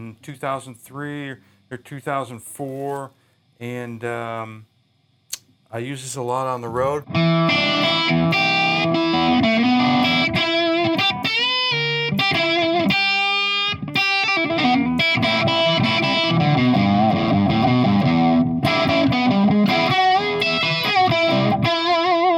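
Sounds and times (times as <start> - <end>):
speech: 0.0 - 4.7, 5.7 - 9.0
overdriven electric guitar played on a 1962-style custom shop SG: 7.0 - 22.3.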